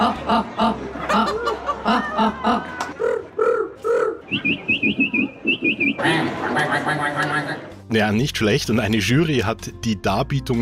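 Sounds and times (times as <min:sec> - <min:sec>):
street art festival audience chuckling and laughing: 0:00.0 - 0:03.0, 0:04.5 - 0:07.7
speech: 0:00.1 - 0:01.3, 0:01.9 - 0:02.7, 0:07.9 - 0:10.6
person imitating bird calls with high chirping whistles in a contest: 0:01.9 - 0:07.7.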